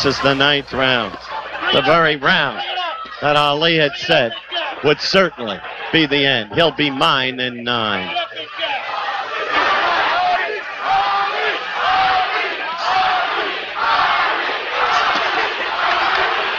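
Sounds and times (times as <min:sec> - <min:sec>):
speech: 0:00.0 - 0:08.3
large boxing crowd screaming and chanting: 0:00.0 - 0:16.5.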